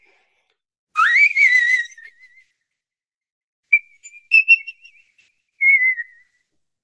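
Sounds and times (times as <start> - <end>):
high piercing whistle-register singing voice: 1.0 - 2.6, 3.7 - 6.5.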